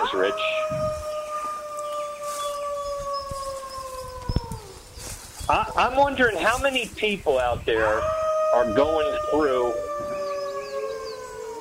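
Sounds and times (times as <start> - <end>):
wolf howl sound effect: 0.0 - 4.8, 7.7 - 11.5
speech: 0.1 - 1.1, 5.5 - 9.8.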